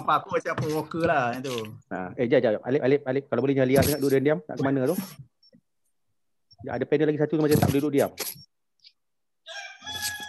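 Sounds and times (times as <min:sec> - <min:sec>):
speech: 0:00.1 - 0:05.3, 0:06.6 - 0:08.4
rooster crowing: 0:09.4 - 0:10.2.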